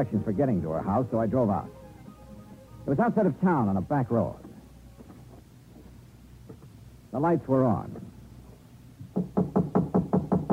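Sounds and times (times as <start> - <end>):
speech: 0.0 - 1.8, 2.8 - 4.5, 7.1 - 8.1, 9.2 - 9.8
knocking on a door: 9.0 - 10.5.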